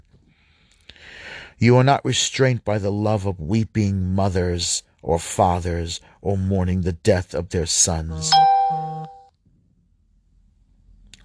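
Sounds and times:
speech: 0:01.6 - 0:08.5
two-note electronic device notification beep: 0:08.3 - 0:09.3.

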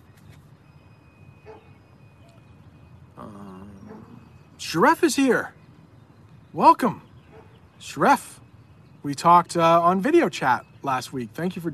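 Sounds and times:
faint dog bark: 0:01.4 - 0:01.8, 0:03.8 - 0:04.4, 0:07.2 - 0:07.6
speech: 0:04.7 - 0:05.6, 0:06.5 - 0:07.0, 0:07.8 - 0:08.4, 0:09.0 - 0:11.7.

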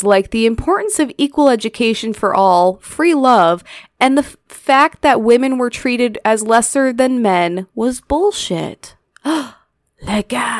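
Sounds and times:
speech: 0:00.0 - 0:10.5
person's exaggerated theatrical mock gasp: 0:09.2 - 0:09.8.

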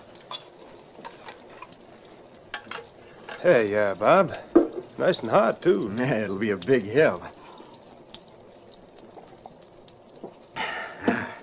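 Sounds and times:
speech: 0:03.4 - 0:07.3
cup clinking and tapping: 0:04.5 - 0:04.9.

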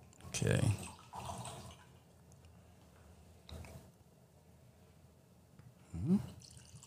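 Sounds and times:
peanut butter whiskey pouring into a glass: 0:00.7 - 0:01.9, 0:06.3 - 0:06.8.

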